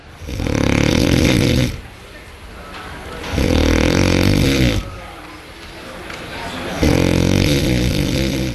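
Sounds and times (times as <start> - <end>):
loud rasping human snoring: 0.2 - 1.8, 3.3 - 5.0, 6.8 - 8.5.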